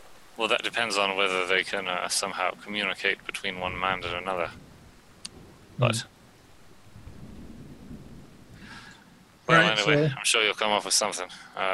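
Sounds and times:
steady rain hiss in a thunderstorm in dark woods: 0.0 - 11.7
speech: 0.4 - 4.7, 5.8 - 6.1, 9.5 - 11.7
low rolling thunder rumble in a thunderstorm in dark woods: 3.2 - 9.5.

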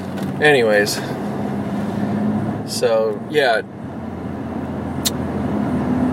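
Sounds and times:
car driving through traffic with low engine and road rumble: 0.0 - 6.1
speech: 0.4 - 1.2, 2.7 - 3.8.

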